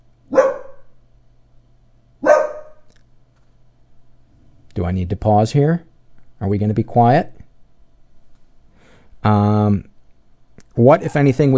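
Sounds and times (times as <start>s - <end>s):
faint low hum: 0.0s - 11.5s
dog barks: 0.3s - 1.0s, 2.2s - 2.9s
speech: 4.8s - 7.4s, 9.2s - 9.9s, 10.8s - 11.5s.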